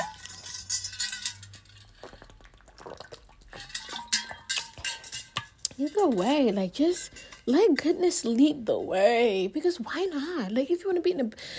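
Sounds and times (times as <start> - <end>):
person sipping and swallowing water: 1.8 - 4.8
speech: 5.8 - 11.5.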